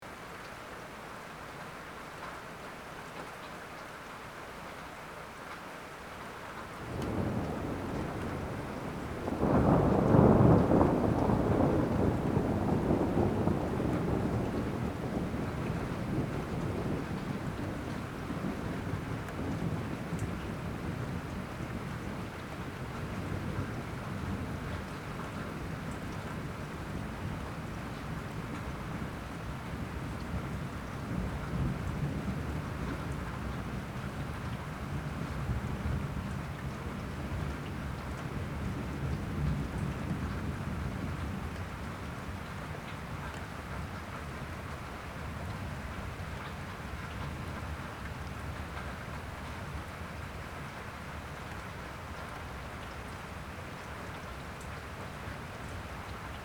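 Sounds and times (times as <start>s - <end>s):
steady rain: 0.0s - 56.4s
distant rolling thunder: 6.8s - 56.4s.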